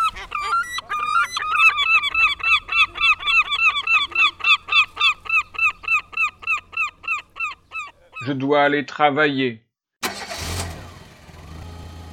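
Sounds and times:
seagulls calling at the seaside: 0.0 - 8.5
speech: 8.3 - 9.6.

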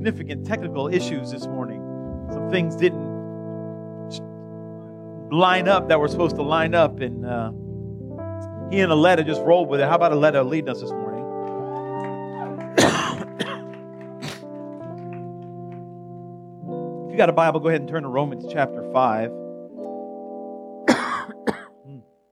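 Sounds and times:
speech: 0.0 - 3.1, 4.1 - 4.3, 5.3 - 7.6, 8.7 - 11.1, 17.2 - 19.4
soft throaty grunt: 2.1 - 2.5
person coughing: 12.8 - 13.6, 14.2 - 14.4, 20.9 - 22.0
throat clearing: 12.8 - 13.6, 14.2 - 14.4, 20.9 - 22.1.

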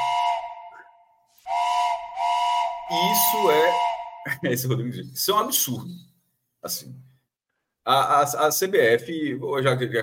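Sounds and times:
steam train whistle blasts: 0.0 - 0.9, 1.5 - 4.4
speech: 2.9 - 7.1, 7.9 - 10.0
laughter: 4.3 - 5.0.

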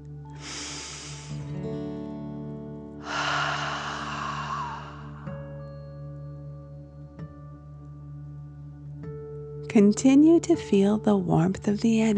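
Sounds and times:
steady soft sustained musical tones: 0.0 - 12.1
deep breath in through the nose and out during a guided energy-breathing exercise: 0.4 - 1.5, 3.0 - 5.4
speech: 9.7 - 12.1.

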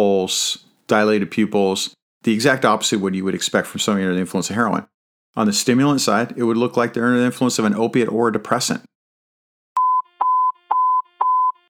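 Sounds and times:
speech: 0.0 - 8.9
police radio alert tones: 9.8 - 11.6.

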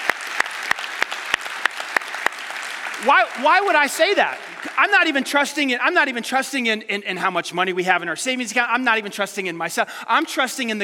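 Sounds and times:
audience clapping in rhythm: 0.0 - 6.2
speech: 3.0 - 10.8.

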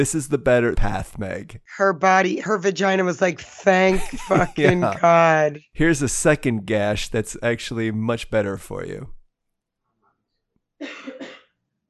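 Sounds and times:
laughter: 0.0 - 1.5, 3.4 - 5.1, 5.8 - 9.0
speech: 0.0 - 9.2, 10.8 - 11.3
person coughing: 4.0 - 5.0, 10.8 - 11.5.

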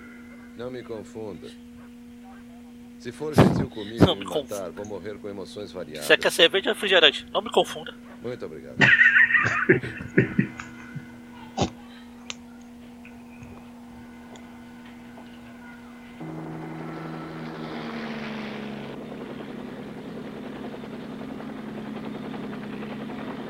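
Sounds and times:
low steady hum: 0.0 - 21.5
helicopter flying in a 1979 film scene: 0.0 - 23.4
laughter: 0.5 - 16.2
speech: 0.6 - 1.7, 3.0 - 10.5
faint ticks: 10.5 - 16.2.

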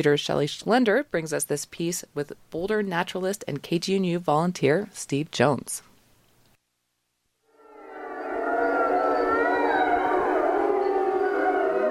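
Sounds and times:
speech: 0.0 - 5.9
thirty-seven wolves howling at dawn on a high grassy ridge in Colorado: 7.6 - 11.8.

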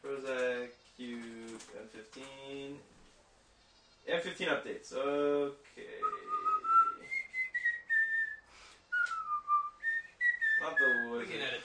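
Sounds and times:
speech: 4.2 - 5.9
person whistling: 6.0 - 11.2.

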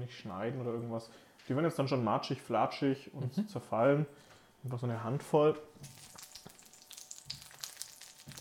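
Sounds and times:
speech: 0.0 - 6.0
whole cocktail tomatoes frying in a pan for hummus pasta: 5.8 - 8.3.

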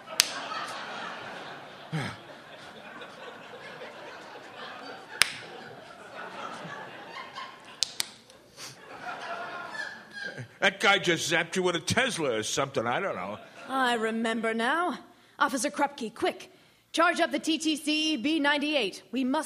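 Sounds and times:
laughter: 0.0 - 11.1, 13.0 - 13.9
repeated slapping on a face: 0.1 - 0.4, 5.2 - 5.5, 7.8 - 8.2
speech: 10.6 - 19.4.

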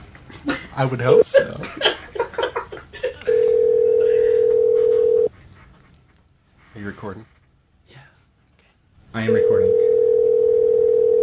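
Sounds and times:
speech: 0.4 - 1.9, 7.0 - 7.4
steady electronic phone ringing tone: 3.3 - 5.3, 9.3 - 11.2.

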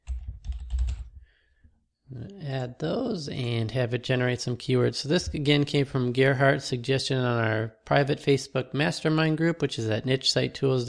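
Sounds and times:
typing on a computer keyboard: 0.0 - 1.1
speech: 2.1 - 10.8.

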